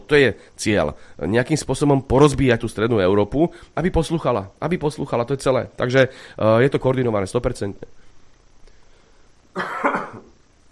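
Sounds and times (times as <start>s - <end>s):
low room noise: 0.0s - 10.7s
speech: 0.1s - 8.0s, 9.6s - 10.2s
single harsh cough: 9.6s - 10.4s.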